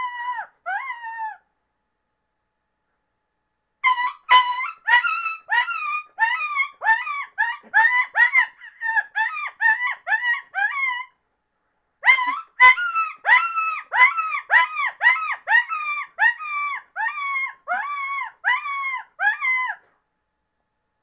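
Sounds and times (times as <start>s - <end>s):
coyote pup distress call: 0.0s - 1.4s, 3.8s - 11.1s, 12.0s - 19.8s.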